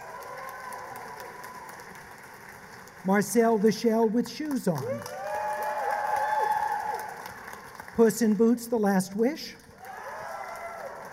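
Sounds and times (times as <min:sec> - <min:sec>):
whoops and cheers: 0:00.0 - 0:02.1, 0:04.8 - 0:07.5, 0:09.8 - 0:11.1
audience applauding to vote for an animated film: 0:00.0 - 0:08.6, 0:09.7 - 0:11.1
speech: 0:03.0 - 0:05.2, 0:08.0 - 0:09.6.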